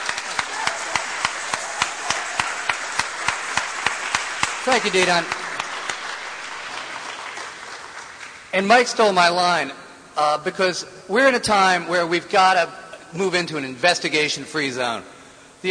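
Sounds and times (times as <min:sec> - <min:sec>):
audience applause: 0:00.0 - 0:08.5
speech: 0:04.7 - 0:05.4, 0:08.5 - 0:15.7.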